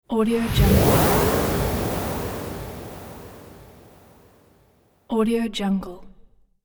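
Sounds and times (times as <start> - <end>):
magic teleport effect: 0.4 - 4.4.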